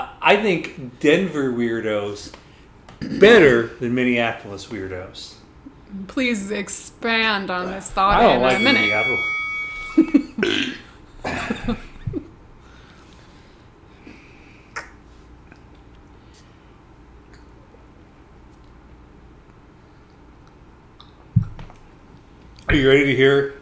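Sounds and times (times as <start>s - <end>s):
speech: 0.3s - 2.4s, 3.0s - 9.4s, 10.0s - 11.8s, 22.8s - 23.6s
short throaty burps: 10.4s - 10.9s.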